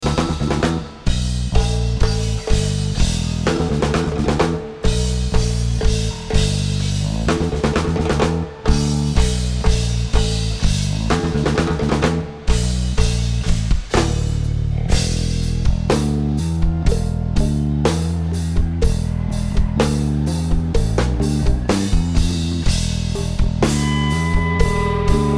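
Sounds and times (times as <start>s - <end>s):
drums jamming: 0.0s - 25.3s.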